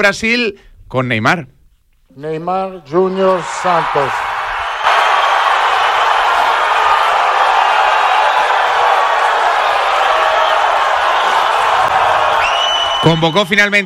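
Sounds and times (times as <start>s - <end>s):
speech: 0.0s - 4.2s, 13.0s - 13.8s
large crowd applauding: 3.1s - 13.4s.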